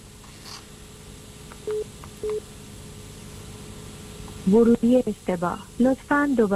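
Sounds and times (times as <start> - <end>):
telephone keypad tones entering a number at a call prompt: 1.7 - 2.4
speech: 4.5 - 6.5.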